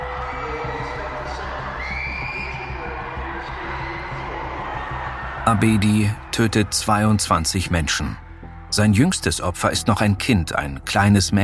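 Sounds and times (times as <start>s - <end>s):
dense crowd shouting and screaming in panic: 0.0s - 7.2s
speech: 5.5s - 8.2s, 8.8s - 11.4s.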